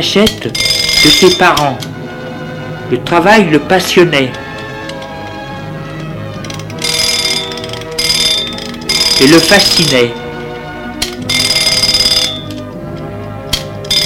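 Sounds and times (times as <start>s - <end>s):
speech: 0.0s - 1.9s, 2.9s - 4.4s, 9.2s - 10.2s
small newly repaired alarm clock ringing: 0.4s - 1.8s, 6.5s - 10.4s, 11.1s - 12.8s, 13.7s - 14.0s.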